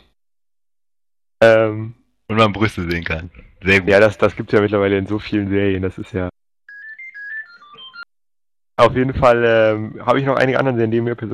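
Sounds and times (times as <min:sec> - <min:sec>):
speech: 0:01.4 - 0:06.4, 0:08.8 - 0:11.3
phone ringing with a short electronic ringtone melody: 0:06.7 - 0:08.2.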